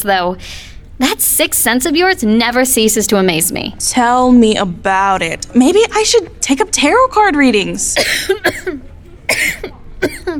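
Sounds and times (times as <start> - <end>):
speech: 0.0 - 8.8
harsh throaty coughs: 8.0 - 10.3.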